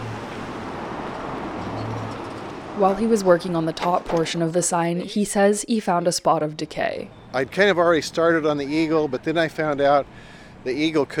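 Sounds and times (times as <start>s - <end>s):
car driving past on a road: 0.0s - 2.8s
speech: 2.8s - 11.1s.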